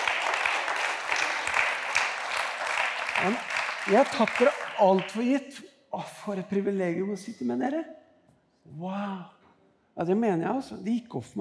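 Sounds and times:
crowd applauding a group of leaders: 0.0 - 5.4
speech: 3.2 - 8.0, 8.7 - 9.4, 10.0 - 11.4.

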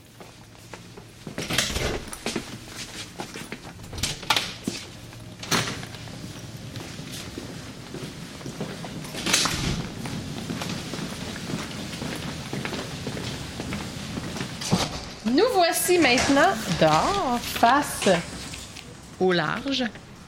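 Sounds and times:
steady indoor hum: 0.0 - 20.2
footsteps: 0.1 - 20.2
theatre doors in a secondary school opening and shutting: 1.3 - 2.4, 3.7 - 6.7, 9.0 - 10.4, 14.5 - 19.2
speech: 15.3 - 18.3, 19.2 - 20.0.

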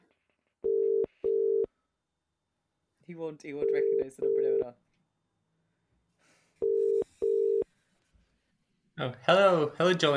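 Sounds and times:
electronic phone ringing tone: 0.6 - 1.7, 3.6 - 4.7, 6.6 - 7.7
speech: 3.2 - 4.9, 9.0 - 10.1.

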